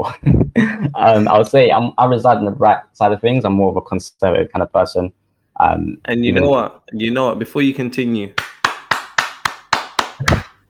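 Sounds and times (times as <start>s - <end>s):
speech: 1.0s - 8.4s
hands clapping: 8.4s - 10.6s.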